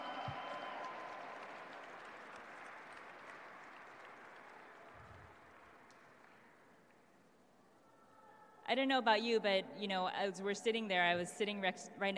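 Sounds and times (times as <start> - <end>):
large audience applauding: 0.0 - 6.7
speech: 8.7 - 12.1.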